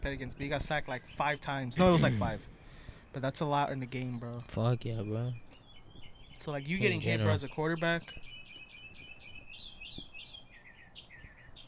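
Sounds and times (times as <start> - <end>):
speech: 0.0 - 5.4, 6.4 - 8.3
two mating birds chirping: 0.0 - 11.6.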